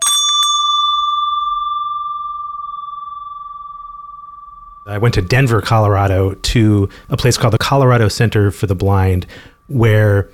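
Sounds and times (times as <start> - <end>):
bright metallic bell ringing: 0.0 - 9.8
speech: 4.9 - 10.3.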